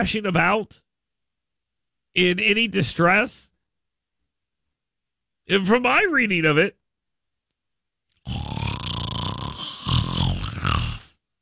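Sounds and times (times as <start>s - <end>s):
speech: 0.0s - 0.8s, 2.1s - 3.5s, 5.5s - 6.8s
sleeping woman snoring roughly: 8.2s - 11.2s.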